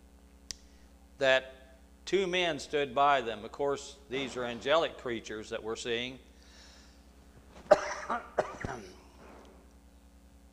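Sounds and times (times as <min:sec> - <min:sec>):
speech: 0:01.2 - 0:06.3, 0:08.1 - 0:08.9
quieter throaty exhale: 0:06.4 - 0:07.0
person coughing: 0:07.7 - 0:09.2.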